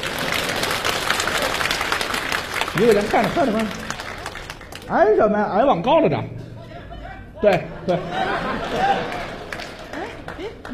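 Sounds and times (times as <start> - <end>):
audience applause at a comedy stage show: 0.0 - 4.9, 8.5 - 10.7
speech: 2.8 - 3.8, 4.9 - 6.4, 7.4 - 9.3, 10.4 - 10.7
laughter: 7.4 - 10.7.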